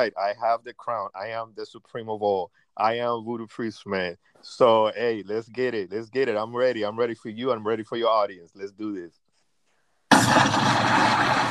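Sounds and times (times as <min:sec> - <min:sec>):
speech: 0:00.0 - 0:09.2
bomb explosion sound effect: 0:10.1 - 0:11.5.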